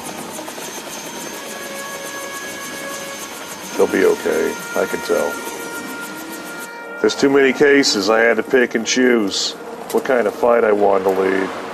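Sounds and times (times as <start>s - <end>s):
helicopter engine whine: 0.0s - 11.7s
helicopter rotor blades beating in a fast steady chop: 0.0s - 11.7s
speech: 3.8s - 5.5s, 7.0s - 11.6s.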